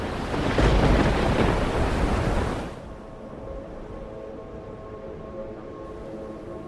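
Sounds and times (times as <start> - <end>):
heavy crashing waves in a storm: 0.0 - 3.0
storm with gusting wind: 0.0 - 6.6.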